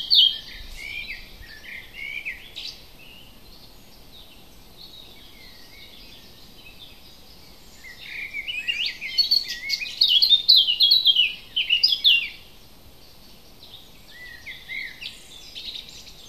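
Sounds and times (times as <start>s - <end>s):
light background hiss: 0.0s - 16.2s
native hedge bird twittering warble: 0.0s - 16.2s.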